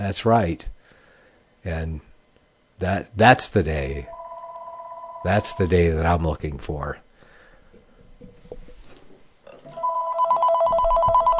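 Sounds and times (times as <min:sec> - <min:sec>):
speech: 0:00.0 - 0:00.7, 0:01.6 - 0:02.1, 0:02.8 - 0:04.2, 0:05.2 - 0:07.0
noise: 0:00.0 - 0:11.3
telephone ringing with electronic trill: 0:04.0 - 0:06.0, 0:09.8 - 0:11.3.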